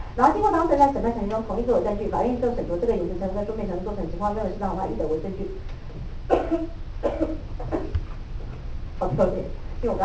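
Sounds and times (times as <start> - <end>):
low hum: 0.0 - 10.0
speech: 0.2 - 5.8, 6.5 - 7.7, 9.0 - 10.0
person with a lingering cough coughing: 6.3 - 8.0.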